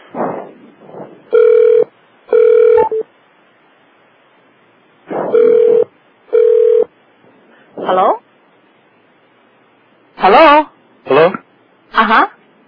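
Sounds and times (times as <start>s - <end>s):
static-like line noise: 0.0s - 12.6s
telephone ringing over a conference line: 1.3s - 3.0s, 5.4s - 6.9s
speech: 10.3s - 10.6s, 12.1s - 12.3s.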